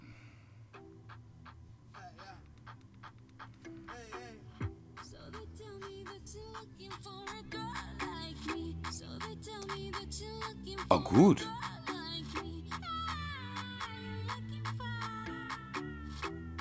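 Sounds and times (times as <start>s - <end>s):
pop song with female singer: 5.0s - 16.6s
speech: 10.1s - 11.6s.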